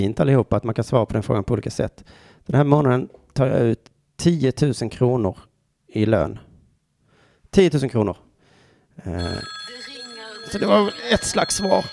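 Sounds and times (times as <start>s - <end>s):
speech: 0.0s - 6.5s, 7.5s - 8.2s, 9.0s - 9.9s, 10.5s - 11.9s
telephone ringing with an incoming call: 9.2s - 11.9s.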